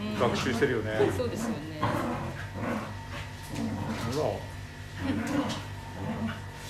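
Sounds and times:
small dogs growling while playing: 0:00.0 - 0:06.6
speech: 0:00.2 - 0:02.7, 0:04.1 - 0:06.4.

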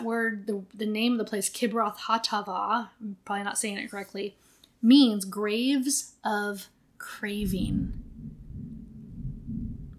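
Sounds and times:
speech: 0:00.0 - 0:08.0
rumble of thunder from a passing thunderstorm: 0:07.4 - 0:09.9.

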